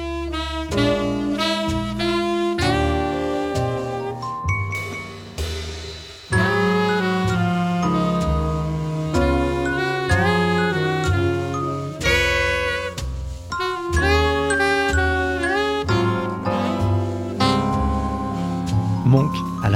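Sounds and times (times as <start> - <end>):
walking low accompaniment in a jazz recording: 0.0 - 19.7
piano chords in a jazz recording: 0.8 - 19.7
celesta notes in a jazz recording: 4.2 - 19.7.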